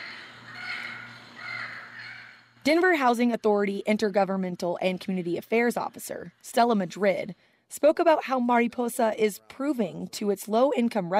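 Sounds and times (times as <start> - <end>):
recorded Yucatan parrot call from an educational button on a stairwell railing: 0.0 - 2.5
speech: 2.6 - 11.1.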